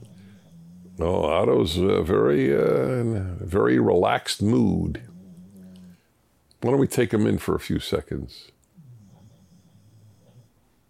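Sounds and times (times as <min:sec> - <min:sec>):
dog snoring softly: 0:00.0 - 0:06.1, 0:08.8 - 0:10.6
speech: 0:01.0 - 0:05.1, 0:06.6 - 0:08.6.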